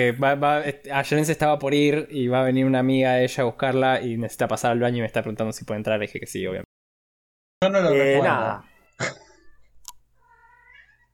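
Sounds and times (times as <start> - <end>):
speech: 0.0 - 6.7, 7.6 - 9.2
cat meowing: 8.3 - 11.1.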